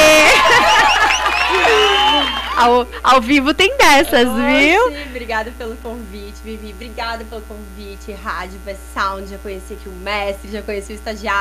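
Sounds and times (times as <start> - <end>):
crowd applauding: 0.0 - 2.8
whoops and excited voices: 0.0 - 2.8
laughter: 0.0 - 3.0, 3.6 - 5.3
speech: 2.6 - 11.4.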